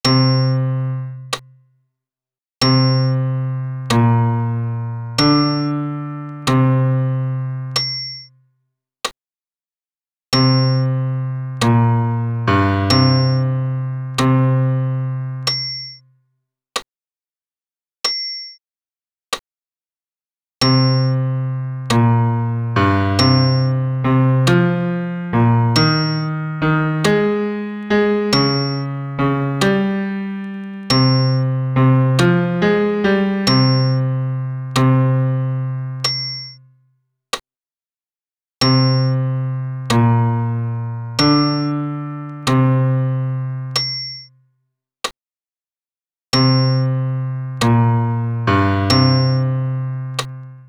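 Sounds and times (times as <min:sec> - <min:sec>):
solo piano: 0:00.0 - 0:01.4, 0:02.6 - 0:08.0, 0:10.4 - 0:15.8, 0:20.6 - 0:36.4, 0:38.6 - 0:44.0, 0:46.4 - 0:50.6.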